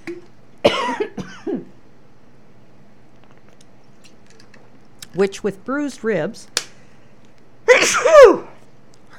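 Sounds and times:
person coughing: 0.6s - 1.8s
speech: 5.2s - 6.6s
person sneezing: 7.7s - 8.5s.

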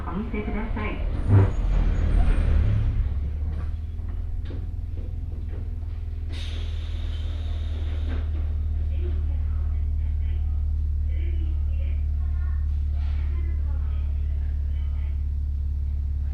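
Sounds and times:
voices of passengers: 0.0s - 2.6s, 7.4s - 16.3s
deep steady rumble inside a local train: 0.0s - 16.3s
faint chatter: 7.3s - 16.3s.

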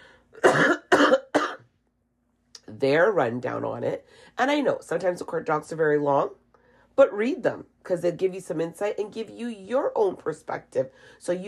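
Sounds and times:
forceful coughs: 0.4s - 1.6s
speech: 2.8s - 6.4s, 7.0s - 11.4s.

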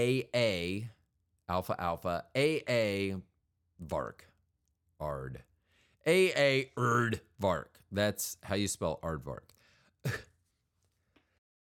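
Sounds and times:
speech: 0.0s - 4.3s, 5.0s - 10.3s
person coughing: 10.0s - 10.4s.

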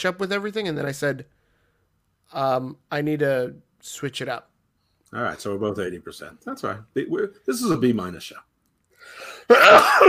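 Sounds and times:
speech: 0.0s - 1.4s, 2.3s - 4.5s, 5.1s - 10.0s
person coughing: 9.4s - 10.0s.

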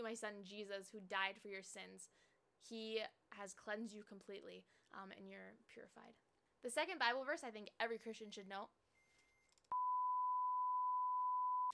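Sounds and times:
speech: 0.0s - 8.8s
kitchen timer electronic beep: 9.3s - 11.7s.

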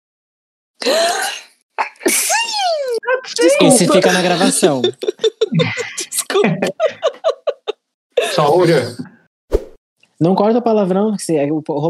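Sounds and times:
speech: 0.8s - 1.4s, 3.4s - 7.1s, 8.4s - 9.1s, 10.2s - 11.8s
person sneezing loudly: 0.8s - 2.6s
laughter: 1.9s - 9.0s.

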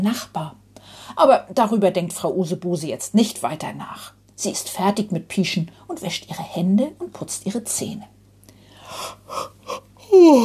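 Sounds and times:
speech: 0.0s - 8.2s, 8.9s - 9.5s, 10.2s - 10.4s
tired woman yawning at bedtime: 9.3s - 10.4s.

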